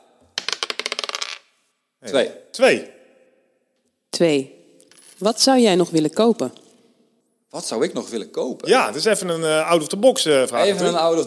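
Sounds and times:
die clattering across a hard surface: 0.4 - 1.4
speech: 2.0 - 3.0, 4.1 - 4.6, 5.2 - 6.6, 7.5 - 11.2.

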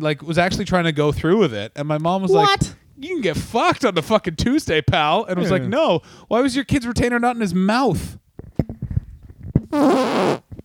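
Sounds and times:
speech: 0.0 - 8.2, 9.7 - 10.4
fart against the microphone: 9.6 - 10.6.

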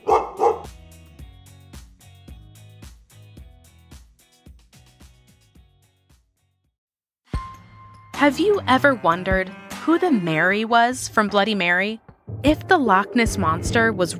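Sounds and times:
puppy yapping: 0.0 - 0.7
speech: 8.2 - 14.1.

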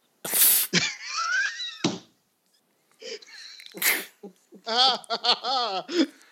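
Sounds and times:
person sneezing: 0.3 - 0.8, 3.8 - 4.2
laughter: 4.3 - 6.1.

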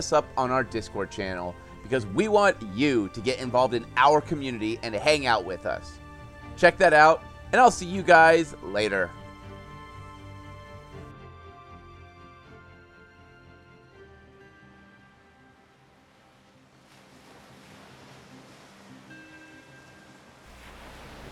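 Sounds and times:
speech: 0.0 - 6.0, 6.6 - 9.2
ocean waves breaking on shore: 0.0 - 9.2, 15.8 - 21.3.

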